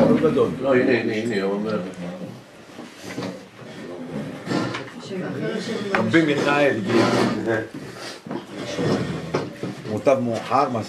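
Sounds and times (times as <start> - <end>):
speech: 0.2 - 2.2, 5.1 - 9.1, 9.9 - 10.8
wooden chair dragged into place: 2.2 - 10.8.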